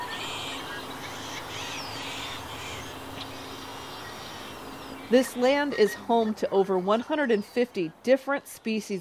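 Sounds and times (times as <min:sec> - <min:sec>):
ducks quacking at a reedy pond in the mid-Columbia region: 0:00.0 - 0:07.1
bird chirps: 0:00.0 - 0:07.8
outdoor ambience at a reedy pond: 0:00.0 - 0:08.9
speech: 0:05.1 - 0:08.9.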